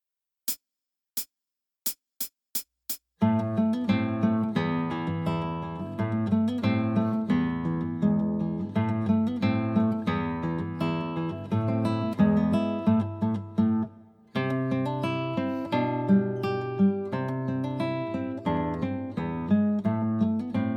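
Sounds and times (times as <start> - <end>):
guitar piece: 3.2 - 20.7.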